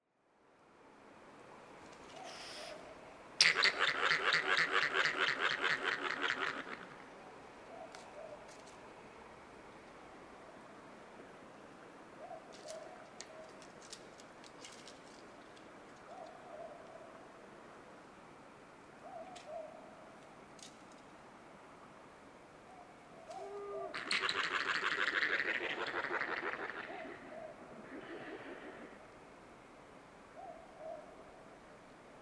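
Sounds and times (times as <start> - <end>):
yellow-bellied glider calling: 2.1 - 7.1, 23.3 - 29.0.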